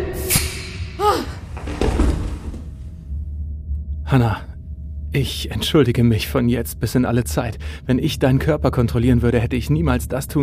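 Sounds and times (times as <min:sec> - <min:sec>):
door squeaky creak: 0:01.2 - 0:02.8
door banging shut: 0:01.4 - 0:02.8
faint steady hum: 0:02.3 - 0:10.4
speech: 0:04.1 - 0:04.5, 0:05.1 - 0:10.4.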